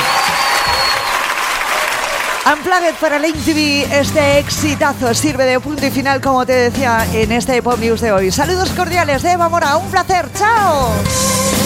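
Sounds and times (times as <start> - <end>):
large audience applause: 0.0 - 3.4
speech: 2.5 - 11.6.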